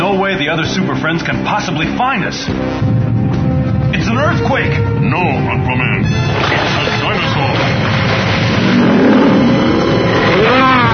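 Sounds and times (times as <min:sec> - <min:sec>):
speech: 0:00.1 - 0:03.1, 0:04.1 - 0:07.9
aqua scooter engine revving: 0:07.0 - 0:10.9.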